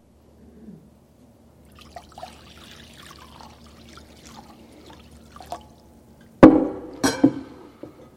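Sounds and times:
water poured into a basin: 0:01.6 - 0:05.9
water trickling and dripping: 0:01.6 - 0:06.4.

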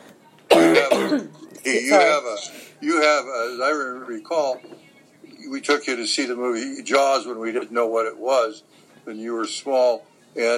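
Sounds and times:
person coughing: 0:00.5 - 0:01.4
speech: 0:01.2 - 0:04.8, 0:05.5 - 0:10.5.

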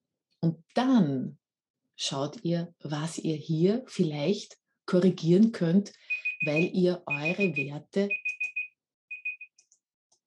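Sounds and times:
speech: 0:00.4 - 0:01.4, 0:02.0 - 0:08.2
timer alarm beeping electronic tones: 0:06.0 - 0:09.6.

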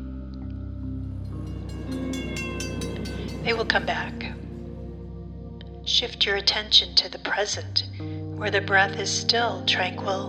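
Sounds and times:
faint tonal whine: 0:00.9 - 0:07.9
train passing with rhythmic clattering: 0:01.0 - 0:07.2
speech: 0:03.4 - 0:04.3, 0:06.0 - 0:10.2.

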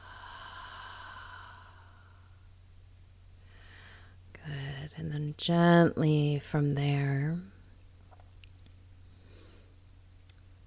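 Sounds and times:
deep breathing during a guided breathing exercise: 0:00.0 - 0:02.5, 0:03.4 - 0:04.2
speech: 0:05.4 - 0:07.5.

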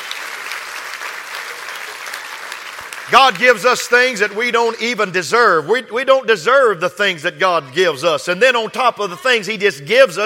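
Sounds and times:
crowd applauding: 0:00.0 - 0:05.2
speech: 0:03.1 - 0:10.2.

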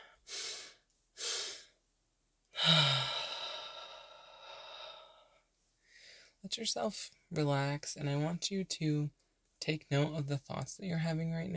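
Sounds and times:
speech: 0:02.7 - 0:03.0, 0:06.5 - 0:11.5
quick sharp inhales in a double-inhale breathing exercise: 0:05.9 - 0:06.4.

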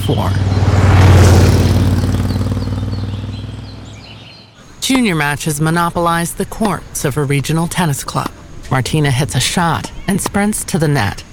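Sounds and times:
motorbike engine roaring at speed in Bohemian countryside: 0:00.0 - 0:04.5
speech: 0:00.1 - 0:00.6, 0:04.9 - 0:11.3.

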